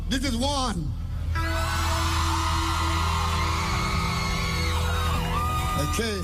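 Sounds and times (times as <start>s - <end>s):
speech: 0.1s - 1.8s, 5.8s - 6.2s
audience of women screaming: 1.4s - 6.2s.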